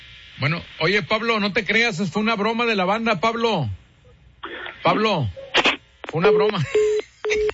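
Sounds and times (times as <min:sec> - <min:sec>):
speech: 0:00.4 - 0:03.8, 0:04.8 - 0:05.4, 0:06.1 - 0:06.9
steady telephone beep while calling another line: 0:06.2 - 0:07.5.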